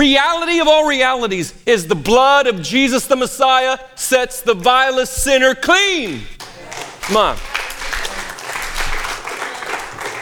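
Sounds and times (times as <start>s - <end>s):
speech: 0.0s - 6.4s, 7.1s - 7.6s
audience applauding: 6.4s - 10.2s.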